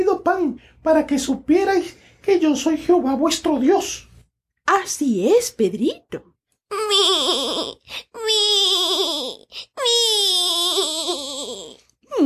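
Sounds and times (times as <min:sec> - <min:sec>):
speech: 0:00.0 - 0:04.1, 0:04.7 - 0:12.2
child wailing and sobbing: 0:06.7 - 0:12.2.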